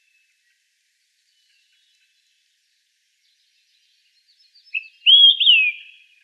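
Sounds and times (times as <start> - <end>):
Olive-sided flycatcher singing: 4.7 - 6.0.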